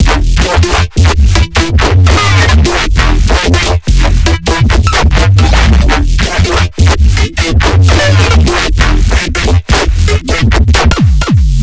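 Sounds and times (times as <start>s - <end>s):
bass loop: 0.0s - 11.6s.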